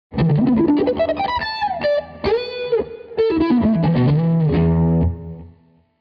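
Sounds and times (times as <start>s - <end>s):
octave lick: 0.1s - 5.6s.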